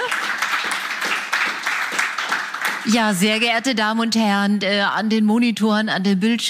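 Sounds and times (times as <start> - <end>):
audience applause: 0.0 - 2.9
speech: 2.8 - 6.4.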